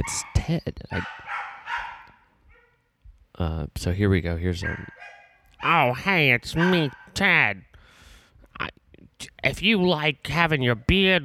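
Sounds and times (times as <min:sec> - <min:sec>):
speech: 0:00.0 - 0:01.8, 0:03.4 - 0:07.7, 0:08.6 - 0:11.2
dog whining: 0:00.0 - 0:02.8, 0:04.6 - 0:05.8
dogs barking excitedly at someone banging on the door: 0:00.0 - 0:02.8, 0:04.6 - 0:07.2.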